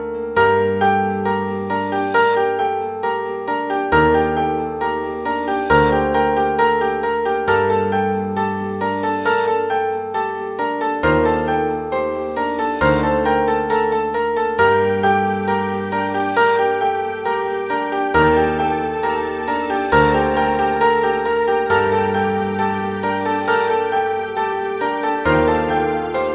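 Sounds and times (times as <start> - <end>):
classical requiem played on piano: 0.0 - 26.3.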